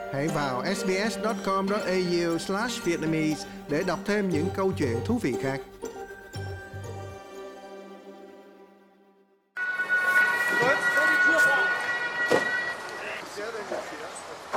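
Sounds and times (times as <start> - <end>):
speech: 0.1 - 5.8
police siren wailing: 9.6 - 13.2
sustained tonal ringing: 9.6 - 13.3.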